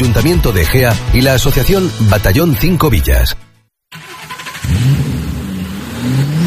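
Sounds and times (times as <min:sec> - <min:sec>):
speech: 0:00.2 - 0:03.5
car engine cranking and revving: 0:03.9 - 0:06.4.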